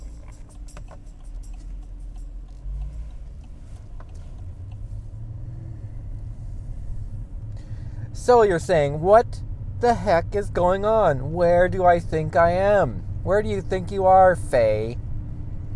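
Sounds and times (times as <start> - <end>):
clicks and light pattering: 0.0 - 5.1
car engine and road rumble driving through city streets: 0.0 - 15.7
speech: 8.2 - 15.0.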